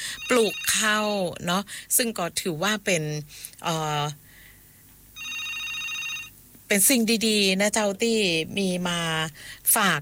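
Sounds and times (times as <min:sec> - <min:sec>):
electronic telephone ringing from an incoming call: 0:00.0 - 0:01.0, 0:05.2 - 0:06.4
speech: 0:00.3 - 0:04.2, 0:06.7 - 0:09.9.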